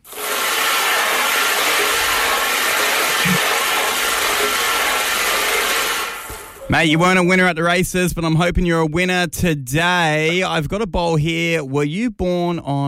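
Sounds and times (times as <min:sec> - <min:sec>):
lottery balls spinning in a ball machine: 0:00.0 - 0:06.6
speech: 0:06.7 - 0:12.8.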